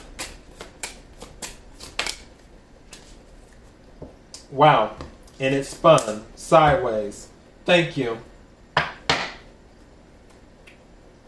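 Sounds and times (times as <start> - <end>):
tarot cards shuffling: 0.0 - 3.8
speech: 4.5 - 8.3.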